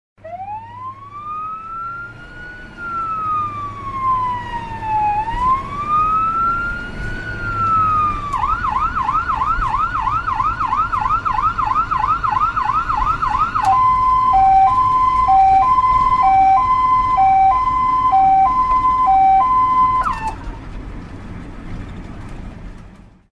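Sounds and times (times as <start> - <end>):
ambulance, fire engine and police sirens: 0.2 - 20.7.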